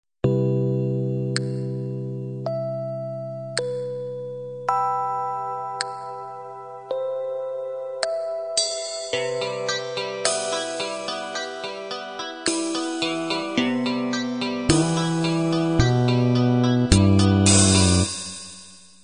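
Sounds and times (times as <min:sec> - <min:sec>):
halftime ballad intro music: 0:00.3 - 0:18.3.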